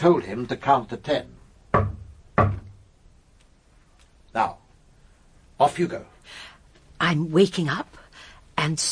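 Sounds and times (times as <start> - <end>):
speech: 0.0 - 1.9, 4.4 - 4.6, 5.6 - 8.0, 8.6 - 8.9
heavy banging on a communicating door: 1.7 - 2.8.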